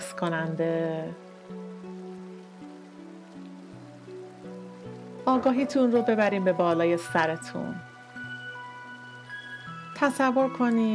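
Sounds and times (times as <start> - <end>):
gentle sustained musical notes: 0.0 - 10.9
rain pattering on a surface: 0.0 - 10.9
speech: 0.2 - 1.7, 5.3 - 7.9, 10.0 - 10.9.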